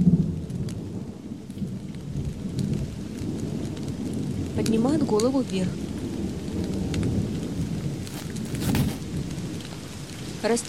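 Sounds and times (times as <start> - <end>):
low thunder rumbling: 0.0 - 10.6
steady heavy rain: 0.0 - 10.6
speech: 4.6 - 5.8, 10.4 - 10.6.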